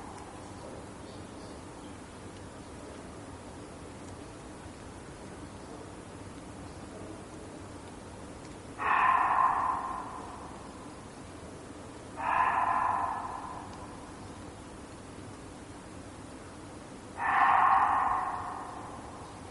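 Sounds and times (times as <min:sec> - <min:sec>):
Reeves's muntjac hoarse barks: 0:00.0 - 0:00.8, 0:08.4 - 0:19.5
low steady noise: 0:00.0 - 0:19.5.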